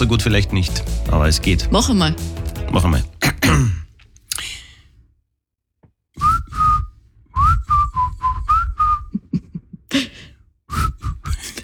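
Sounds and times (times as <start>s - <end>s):
speech: 0.0s - 3.8s
person whistling a catchy pop melody: 6.2s - 9.2s, 10.7s - 11.6s
stifled laughter or breath noise: 9.1s - 10.3s, 11.3s - 11.6s.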